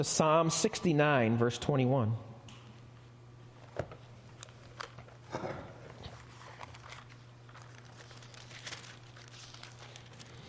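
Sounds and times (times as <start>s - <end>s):
speech: 0.0s - 2.3s
low steady hum: 0.0s - 10.4s
Bible pages being turned by an audience: 5.8s - 10.4s.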